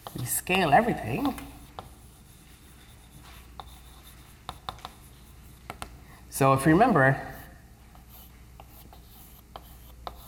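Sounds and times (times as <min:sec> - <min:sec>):
scratching of writing on a board during a mathematics lecture: 0:00.0 - 0:00.3, 0:01.1 - 0:06.0, 0:07.3 - 0:10.2
speech: 0:00.2 - 0:01.5, 0:06.4 - 0:07.3.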